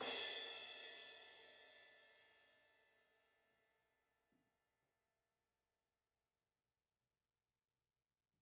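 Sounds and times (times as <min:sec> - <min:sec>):
crash cymbal: 0:00.0 - 0:02.2.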